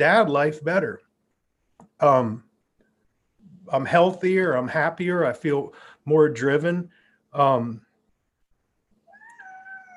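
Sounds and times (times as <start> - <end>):
speech: 0.0 - 1.0, 2.0 - 2.5, 3.7 - 7.8
cat meowing: 9.0 - 9.9.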